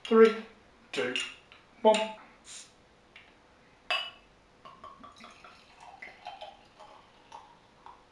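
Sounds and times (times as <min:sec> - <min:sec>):
speech: 0:00.1 - 0:02.7
glassy clink: 0:03.9 - 0:07.5
dark quadruple beer pouring from a bottle into a glass: 0:04.7 - 0:08.1.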